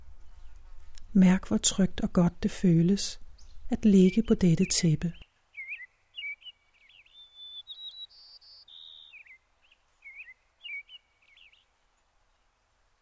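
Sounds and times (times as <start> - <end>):
faint hum: 0.0 - 5.2
speech: 1.1 - 5.2
birds singing outdoors on a sunny warm day: 3.3 - 11.7.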